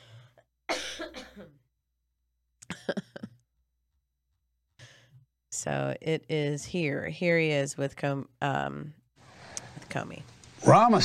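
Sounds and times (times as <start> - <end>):
harsh coughing: 0.7 - 1.6
speech: 5.6 - 9.0, 10.0 - 11.0.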